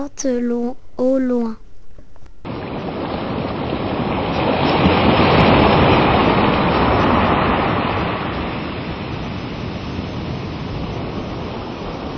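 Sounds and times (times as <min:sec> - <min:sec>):
speech: 0:00.0 - 0:01.6
sea waves on a beach in Tahiti: 0:02.5 - 0:12.1.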